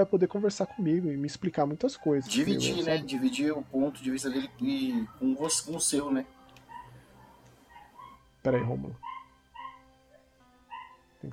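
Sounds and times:
speech: 0.0s - 6.4s, 8.4s - 9.2s
small dog yelping and whining excitedly: 6.7s - 8.2s, 9.0s - 9.8s, 10.7s - 11.0s.

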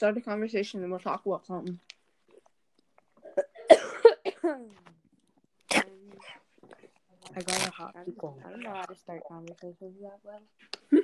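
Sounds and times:
speech: 0.0s - 2.0s, 4.4s - 5.0s, 7.3s - 11.0s
person coughing harshly: 3.3s - 4.6s.

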